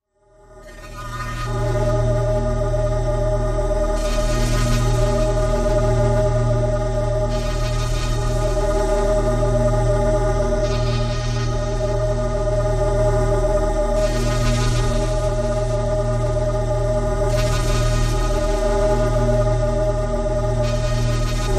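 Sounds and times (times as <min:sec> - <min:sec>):
airy choir-like drone sci-fi ambience: 0:00.2 - 0:21.5.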